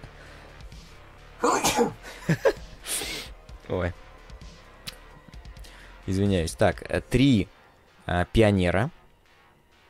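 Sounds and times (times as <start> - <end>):
sneeze: 1.4 - 2.0
speech: 1.8 - 2.5, 3.7 - 4.0, 6.1 - 9.0.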